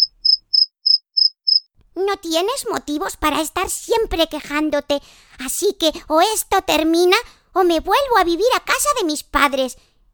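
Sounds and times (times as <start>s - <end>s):
cricket chirping: 0.0s - 1.7s
speech: 2.0s - 9.9s.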